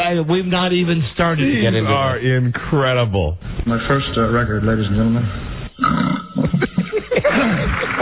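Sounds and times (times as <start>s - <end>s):
speech: 0.1s - 6.1s
low croaky burp on a lo-fi record playback: 5.8s - 7.6s
laughter: 6.4s - 7.9s.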